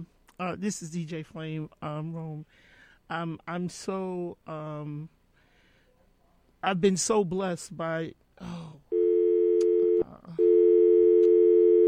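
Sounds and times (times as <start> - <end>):
speech: 0.0 - 5.2, 6.6 - 8.8
faint noise: 0.0 - 11.8
telephone busy tone after a call drops during a radio phone-in: 8.9 - 11.8.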